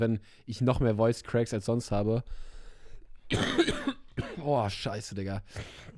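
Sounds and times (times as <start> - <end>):
speech: 0.0 - 2.6, 3.3 - 5.9
single harsh raspy cough: 3.3 - 4.6.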